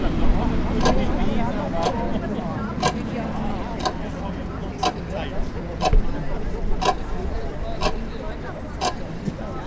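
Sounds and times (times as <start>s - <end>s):
outdoor crowd voices murmuring at a protest: 0.0s - 9.6s
large clock ticking at a protest: 0.8s - 1.0s, 1.8s - 2.0s, 2.8s - 3.1s, 3.8s - 4.2s, 4.8s - 5.0s, 6.8s - 7.0s, 7.8s - 8.0s, 8.8s - 9.0s.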